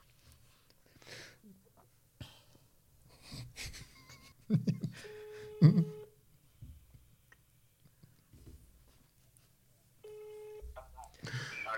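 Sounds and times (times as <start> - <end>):
telephone ringing tone on the line: 5.0 - 6.1, 10.0 - 10.7
people talking: 10.8 - 11.7.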